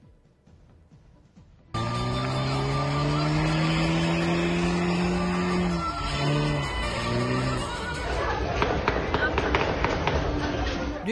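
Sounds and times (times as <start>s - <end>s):
car engine roar: 1.7s - 8.9s
car tires squealing in a burnout in a wedding convoy in Bursa Turkey: 1.8s - 8.2s
crowd noise: 1.8s - 11.0s.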